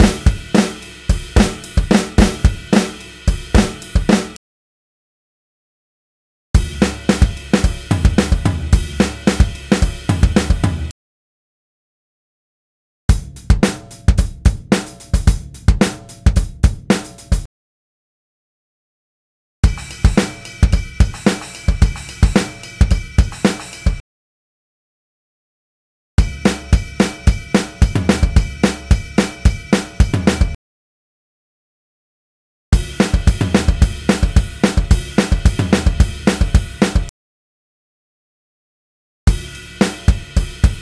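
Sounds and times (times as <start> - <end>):
southern rock drum loop: 0.0 - 4.4, 6.6 - 10.9, 13.1 - 17.5, 19.6 - 24.0, 26.2 - 30.6, 32.8 - 37.1, 39.3 - 40.8.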